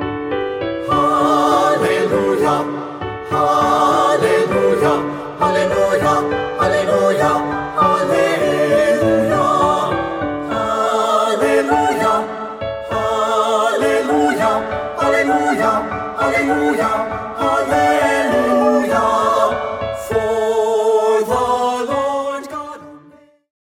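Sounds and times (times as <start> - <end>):
choral piece: 0.2 - 23.5.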